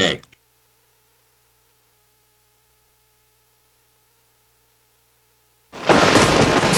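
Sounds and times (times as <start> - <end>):
speech: 0.0 - 0.3
loud thunder clap rolling into heavy sustained rumble: 5.8 - 6.7.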